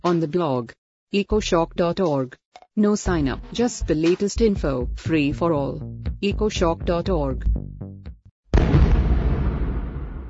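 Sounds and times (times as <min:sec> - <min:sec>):
speech: 0:00.0 - 0:07.8
stun grenade exploding: 0:08.5 - 0:10.2.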